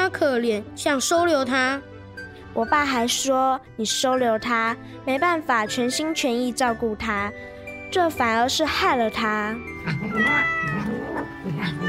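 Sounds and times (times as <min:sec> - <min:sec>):
speech: 0:00.2 - 0:01.9, 0:02.6 - 0:10.6
big yellow cat meowing: 0:09.8 - 0:11.8.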